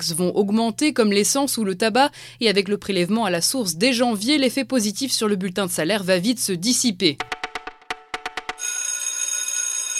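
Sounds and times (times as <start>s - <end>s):
speech: 0.0s - 7.4s
electric school bell ringing: 8.6s - 9.9s.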